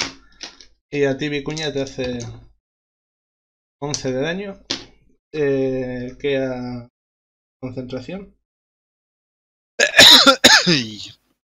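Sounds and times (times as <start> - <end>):
speech: 0.9 - 2.5, 3.8 - 4.7, 5.3 - 6.9, 7.6 - 8.4, 10.2 - 11.2
person clearing throat: 9.8 - 11.1
person coughing: 9.8 - 11.1.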